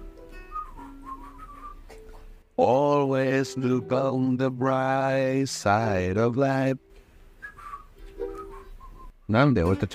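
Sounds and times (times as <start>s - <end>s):
person whistling a tune: 0.3s - 2.2s, 7.4s - 9.2s
speech: 2.6s - 6.9s, 9.3s - 9.9s.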